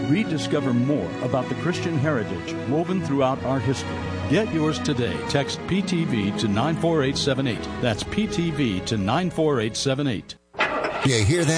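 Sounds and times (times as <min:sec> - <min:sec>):
speech: 0:00.1 - 0:10.4, 0:11.0 - 0:11.5
car engine starting: 0:10.6 - 0:11.5.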